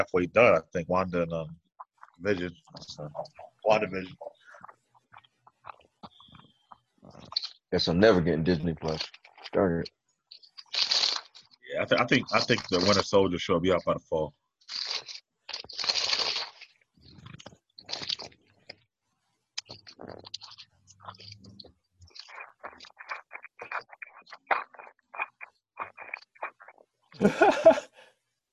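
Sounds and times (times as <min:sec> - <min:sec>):
speech: 0:00.0 - 0:01.6, 0:02.2 - 0:04.3, 0:07.1 - 0:10.0, 0:11.7 - 0:14.8
person chewing crunchy food: 0:01.9 - 0:07.7, 0:08.8 - 0:09.7, 0:10.3 - 0:13.1, 0:14.6 - 0:18.8, 0:19.6 - 0:27.4
laughter: 0:27.2 - 0:27.9.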